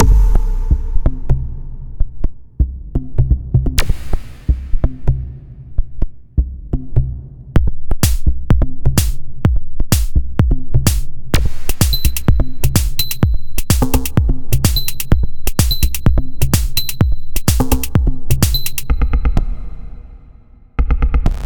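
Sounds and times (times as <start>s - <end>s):
DSP processed drums: 0.0s - 20.2s, 20.8s - 21.4s.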